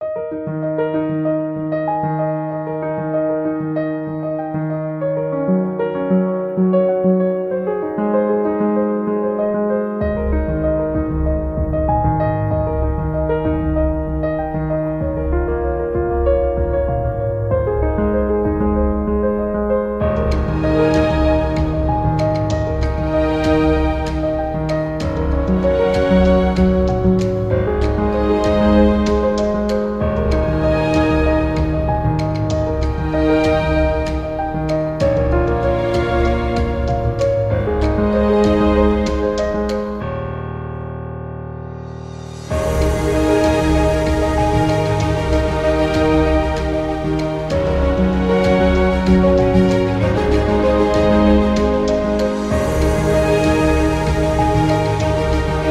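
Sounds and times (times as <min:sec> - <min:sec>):
documentary piano music: 0:00.0 - 0:55.6.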